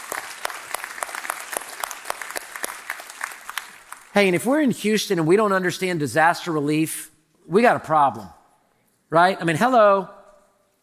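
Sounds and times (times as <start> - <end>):
large crowd applauding: 0.0 - 4.2
speech: 4.2 - 8.4, 9.1 - 10.2.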